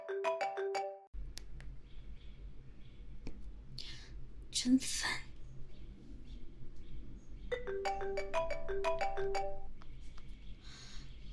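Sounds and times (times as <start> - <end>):
phone ringtone melody of quick electronic notes: 0.0 - 1.1, 7.5 - 9.8
low steady hum: 1.2 - 11.3
speech: 4.6 - 5.2.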